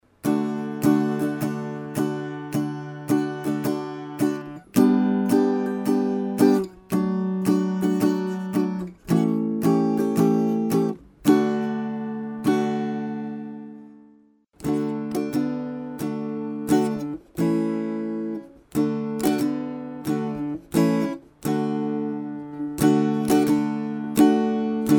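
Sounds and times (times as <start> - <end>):
kids guitar: 0.0 - 24.9.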